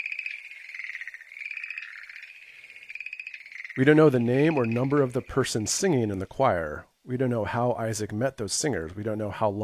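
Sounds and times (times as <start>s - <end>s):
dense chorus of frogs croaking: 0.0s - 6.6s
speech: 3.8s - 9.6s.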